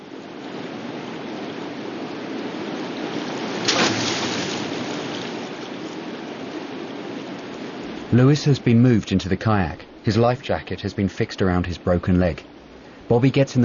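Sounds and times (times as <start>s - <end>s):
flowing river rushing: 0.0s - 13.6s
heavy splash of a weighted corpse rolled into river water: 3.5s - 5.5s
speech: 8.1s - 12.5s, 13.1s - 13.6s.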